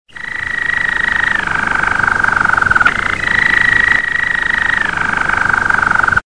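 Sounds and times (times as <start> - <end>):
Waterslager Malinois canary singing chorr or knorr song: 0.1 - 6.2.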